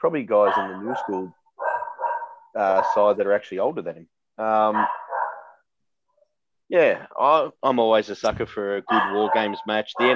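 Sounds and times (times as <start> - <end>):
speech: 0.0 - 1.4, 2.6 - 5.0, 6.7 - 10.1
dog barking: 0.3 - 3.2, 4.7 - 5.6, 8.9 - 10.1.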